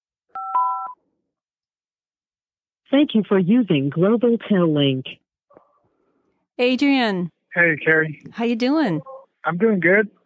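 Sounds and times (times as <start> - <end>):
telephone keypad tone dialing five: 0.4 - 1.0
speech: 2.9 - 5.2, 6.6 - 10.2.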